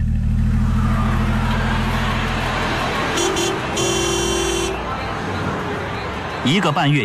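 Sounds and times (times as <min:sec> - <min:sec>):
car engine rumbling as the car turns a corner and pulls away: 0:00.0 - 0:06.5
car horn honks: 0:03.1 - 0:04.9.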